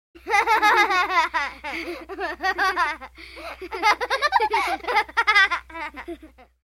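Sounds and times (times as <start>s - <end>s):
two children giggling close: 0.2s - 6.6s.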